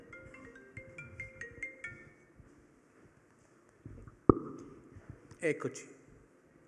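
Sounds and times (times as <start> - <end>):
mobile phone ringing with a repeating electronic melody: 0.0 - 2.3
speech: 5.4 - 6.0.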